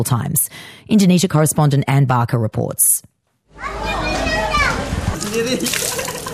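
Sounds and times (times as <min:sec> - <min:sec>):
speech: 0:00.0 - 0:03.7, 0:05.4 - 0:05.9
children shouting and playing in floodwater in Jakarta Indonesia: 0:03.5 - 0:05.1
floodwater splashing and sloshing on a main street in Jakarta: 0:03.9 - 0:06.3.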